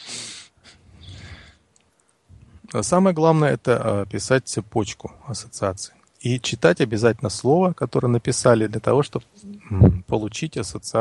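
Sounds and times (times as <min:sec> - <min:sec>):
slow focused breathing with nasal edge: 0:00.0 - 0:02.6
speech: 0:02.7 - 0:10.9.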